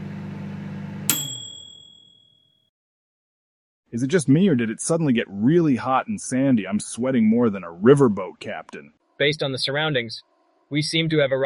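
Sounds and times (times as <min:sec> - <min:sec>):
microwave oven humming: 0:00.0 - 0:02.0
microwave oven single bright ding: 0:01.1 - 0:02.4
speech: 0:03.9 - 0:11.4.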